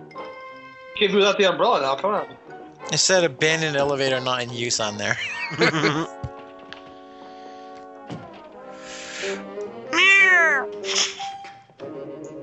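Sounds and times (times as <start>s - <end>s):
speech: 1.0s - 6.2s
laughter: 2.9s - 6.2s
cat meowing and yowling: 10.0s - 10.7s.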